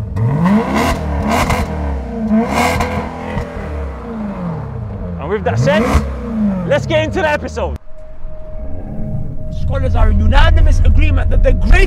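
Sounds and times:
car engine revving through twin tailpipes on an unfiltered exhaust: 0:00.0 - 0:11.8
speech: 0:05.4 - 0:07.8, 0:09.7 - 0:11.8.

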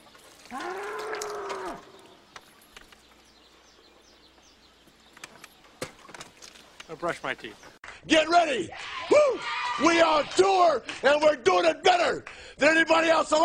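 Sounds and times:
bull mooing: 0:00.5 - 0:02.1
speech: 0:06.9 - 0:13.4.

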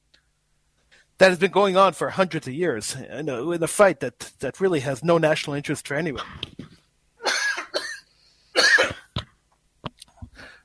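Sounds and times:
speech: 0:01.2 - 0:06.5
person coughing harshly: 0:06.2 - 0:09.3.

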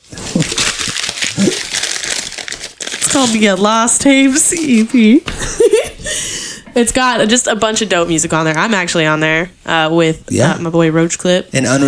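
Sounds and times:
paper crinkling as it is handled: 0:00.0 - 0:05.2
speech: 0:03.2 - 0:05.3, 0:06.8 - 0:11.8.

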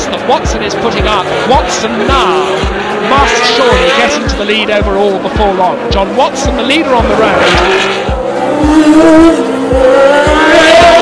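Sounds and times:
Formula One racing car engine screaming through gear changes: 0:00.0 - 0:11.0
speech: 0:00.1 - 0:11.0.

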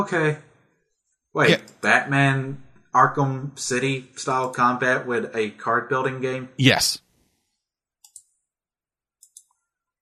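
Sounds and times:
speech: 0:00.0 - 0:00.5, 0:01.3 - 0:07.0
keyboard clicks: 0:08.0 - 0:08.4, 0:09.2 - 0:09.6.

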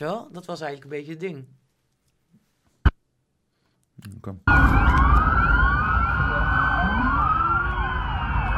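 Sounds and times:
speech: 0:00.0 - 0:01.6, 0:04.0 - 0:05.4
several police car sirens wailing: 0:04.5 - 0:08.5
steady rumble of traffic: 0:04.5 - 0:08.5.

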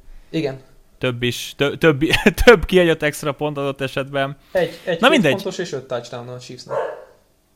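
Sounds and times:
speech: 0:00.3 - 0:06.9
laughter: 0:02.0 - 0:02.7
single short dog bark: 0:06.7 - 0:07.3.

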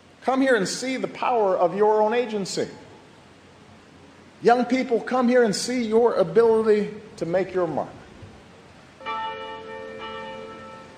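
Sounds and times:
speech: 0:00.2 - 0:02.9, 0:04.4 - 0:08.0
church bell ringing: 0:09.0 - 0:10.9.

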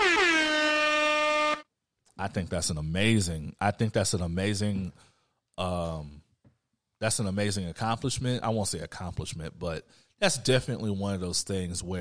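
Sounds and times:
air horn blast: 0:00.0 - 0:01.7
speech: 0:02.2 - 0:06.2, 0:07.0 - 0:11.9.

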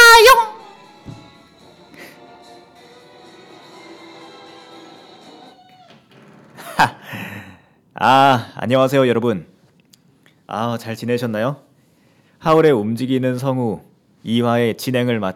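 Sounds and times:
cat meowing: 0:05.4 - 0:06.2
speech: 0:08.0 - 0:09.5, 0:10.5 - 0:11.6, 0:12.4 - 0:15.3.

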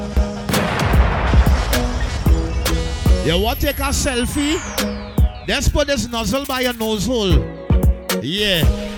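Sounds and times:
steady rumbling background: 0:00.3 - 0:07.5
loud gunshots with sharp cracks and booming thuds: 0:00.4 - 0:07.0
speech: 0:03.2 - 0:07.5, 0:08.1 - 0:08.8.

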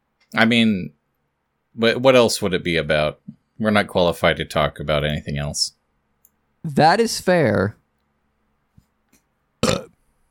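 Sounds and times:
speech: 0:00.3 - 0:01.0, 0:01.8 - 0:05.8, 0:06.6 - 0:07.8
short loud burp: 0:09.6 - 0:10.0.

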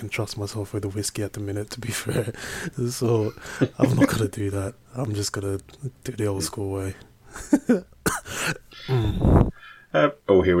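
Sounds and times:
speech: 0:00.0 - 0:10.5
person coughing: 0:03.5 - 0:04.2, 0:08.0 - 0:09.2.

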